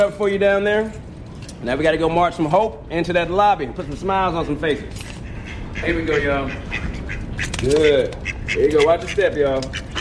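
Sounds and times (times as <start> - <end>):
speech: 0.0 - 5.1, 5.8 - 10.0
noise: 0.0 - 10.0
ducks quacking: 5.2 - 10.0.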